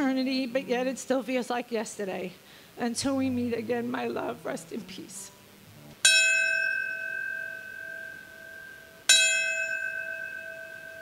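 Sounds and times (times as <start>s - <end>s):
speech: 0.3s - 5.4s
memorial bell tolling at a 20th-anniversary memorial: 6.0s - 11.0s.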